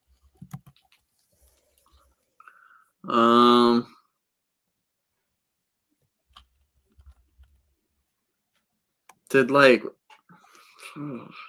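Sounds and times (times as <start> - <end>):
typing names into a web browser on a computer keyboard: 0.4 - 0.9
speech: 3.0 - 3.9, 9.3 - 10.0, 10.9 - 11.4.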